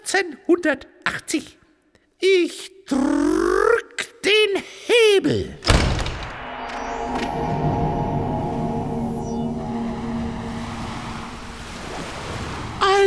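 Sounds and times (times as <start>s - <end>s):
speech: 0.1s - 1.6s, 2.2s - 3.2s, 4.2s - 5.8s
thin high sweeping tone: 6.0s - 13.0s
rushing sea surf waves: 6.4s - 13.0s.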